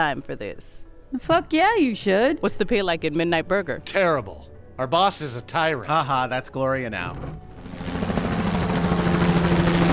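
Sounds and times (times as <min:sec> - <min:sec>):
speech: 0:00.0 - 0:08.0
military helicopter flying overhead: 0:07.4 - 0:09.9.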